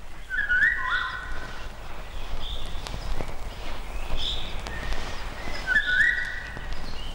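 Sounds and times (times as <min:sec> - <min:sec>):
Eurasian golden oriole song: 0:00.2 - 0:01.3, 0:04.2 - 0:07.1.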